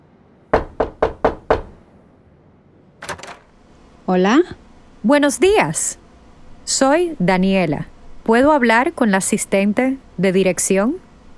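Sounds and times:
firm knocking on a door: 0:00.5 - 0:01.8
brief rattling clatter: 0:03.0 - 0:03.5
speech: 0:04.1 - 0:06.0, 0:06.7 - 0:11.0.

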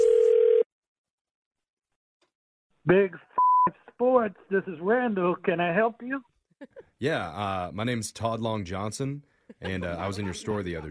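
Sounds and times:
loud steady telephone dial tone before a call: 0:00.0 - 0:00.7
speech: 0:02.9 - 0:03.3, 0:04.0 - 0:10.8
laughter: 0:09.5 - 0:10.8.

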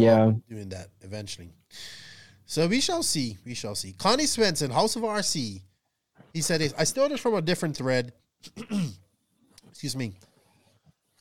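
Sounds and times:
speech: 0:00.0 - 0:05.7, 0:06.3 - 0:09.0, 0:09.8 - 0:10.3
voiced harsh coughs: 0:08.4 - 0:09.0.

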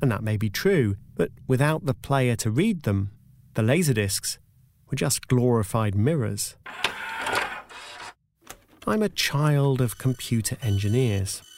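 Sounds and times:
speech: 0:00.0 - 0:07.2, 0:08.8 - 0:11.5
dot matrix printer printing: 0:06.7 - 0:08.2, 0:09.8 - 0:11.5.

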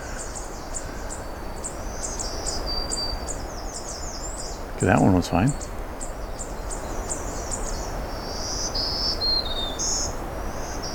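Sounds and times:
black-throated green warbler singing high thin buzzy notes: 0:00.0 - 0:10.9
constant rushing outdoor background: 0:04.6 - 0:05.9
speech: 0:04.8 - 0:05.8.

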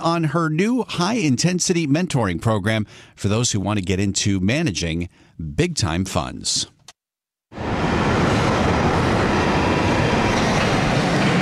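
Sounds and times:
speech: 0:00.0 - 0:06.8
London Underground Northern Line train running: 0:07.6 - 0:11.4.

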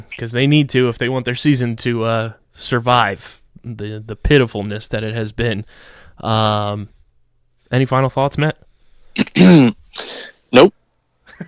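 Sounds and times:
speech: 0:00.0 - 0:07.0, 0:07.7 - 0:08.6, 0:09.2 - 0:10.8
person clearing throat: 0:09.2 - 0:10.7.

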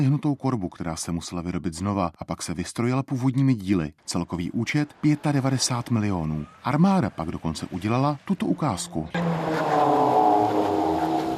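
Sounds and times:
speech: 0:00.0 - 0:10.0
heavy 20-ton armored vehicle engine droning while driving and braking: 0:08.5 - 0:11.3.

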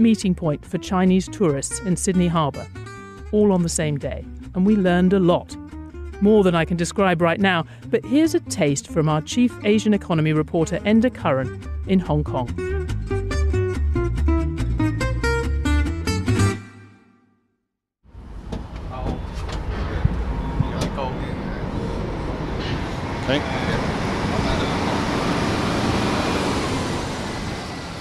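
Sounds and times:
speech: 0:00.0 - 0:05.6, 0:06.2 - 0:12.7, 0:23.3 - 0:23.5
short passage of music: 0:00.0 - 0:17.7
cranes and trucks at a busy container shipping port in Hong Kong: 0:18.1 - 0:28.0.

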